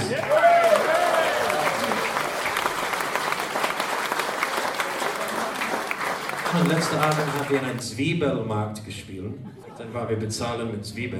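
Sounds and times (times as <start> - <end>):
concert crowd applauding a band: 0.0 - 7.9
speech: 6.7 - 11.1.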